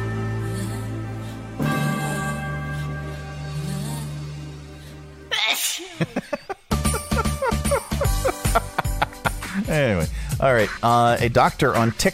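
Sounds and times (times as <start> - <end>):
long steady sung note: 0.1 - 4.5
laughter: 5.7 - 9.7
bright bouncy music with chiming bells and steady beat: 6.7 - 10.2
speech: 9.8 - 12.1.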